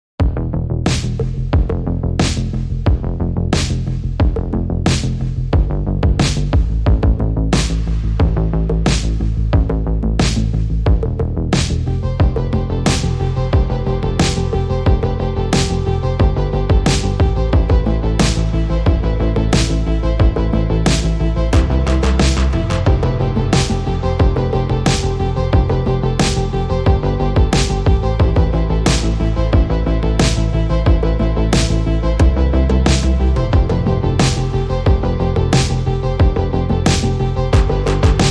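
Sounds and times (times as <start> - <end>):
music mix: 0.2 - 38.3.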